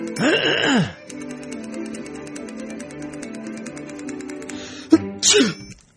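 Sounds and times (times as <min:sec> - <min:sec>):
person sneezing: 0:00.2 - 0:01.0, 0:04.9 - 0:05.7.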